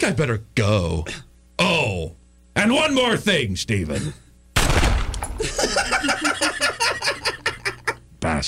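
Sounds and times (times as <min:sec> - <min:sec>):
speech: 0:00.0 - 0:04.8, 0:08.2 - 0:08.4
loud gunshot: 0:04.6 - 0:05.4
person laughing rhythmically: 0:05.4 - 0:08.0.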